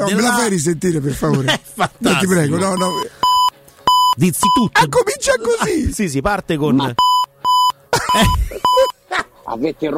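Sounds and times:
speech: 0:00.0 - 0:03.2, 0:04.2 - 0:07.1, 0:08.1 - 0:08.6, 0:09.5 - 0:09.9
sharp electronic censor bleeps: 0:02.8 - 0:04.7, 0:07.0 - 0:08.9
laughter: 0:08.0 - 0:09.3.

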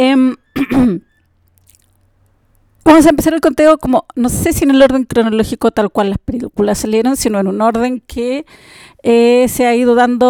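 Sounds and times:
speech: 0:00.0 - 0:01.1, 0:02.8 - 0:10.2
person coughing: 0:00.6 - 0:01.1
throat clearing: 0:00.6 - 0:01.1.

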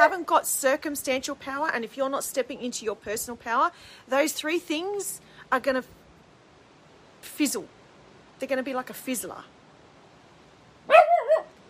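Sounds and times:
speech: 0:00.0 - 0:06.0, 0:07.3 - 0:07.8, 0:08.4 - 0:09.6
single dog bark: 0:10.9 - 0:11.6.

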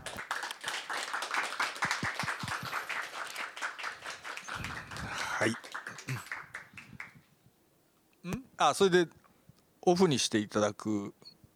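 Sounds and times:
several people clapping at home: 0:00.0 - 0:07.2
speech: 0:05.4 - 0:05.6, 0:08.6 - 0:09.2, 0:09.8 - 0:11.2.

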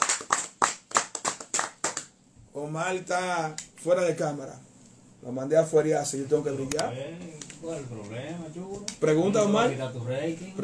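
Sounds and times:
hand claps for performers on a radio show: 0:00.0 - 0:02.2
speech: 0:02.6 - 0:10.6.

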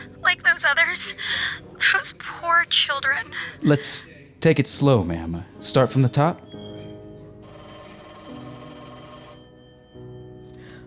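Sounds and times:
speech: 0:00.6 - 0:06.5
police department telephone in Berkeley ringing: 0:07.4 - 0:10.6.

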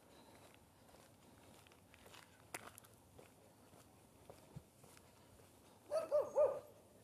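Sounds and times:
faint footsteps or rustling outdoors: 0:00.0 - 0:07.0
dog barking: 0:05.9 - 0:06.8.

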